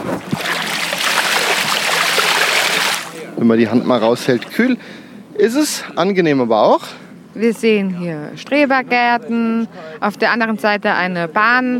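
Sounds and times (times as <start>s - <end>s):
river water splashing and gurgling beside a small boat: 0.0s - 3.3s
speech: 3.4s - 11.7s.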